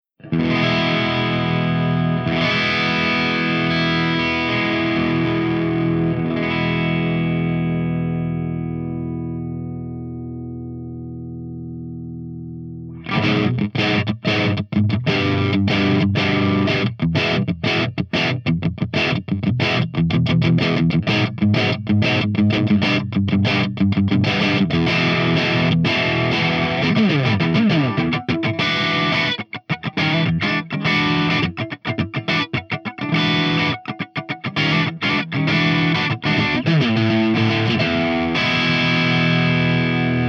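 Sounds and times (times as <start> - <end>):
crunch guitar amp tone through V30 speaker: 0.2 - 40.2.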